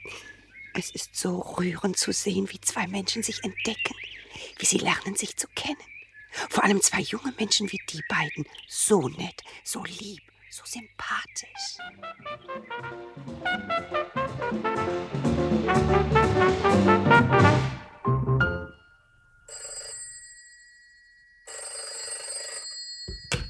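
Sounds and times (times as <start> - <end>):
speech: 0.8 - 18.2
full busy orchestral music: 11.9 - 18.8
telephone bell ringing in bright shrill bursts: 19.2 - 23.4.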